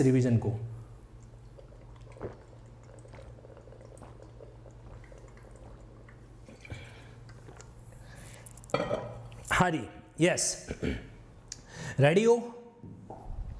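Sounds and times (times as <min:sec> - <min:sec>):
speech: 0:00.0 - 0:00.7, 0:09.6 - 0:11.1, 0:12.0 - 0:12.6
person drinking water with small gulps: 0:01.1 - 0:09.5.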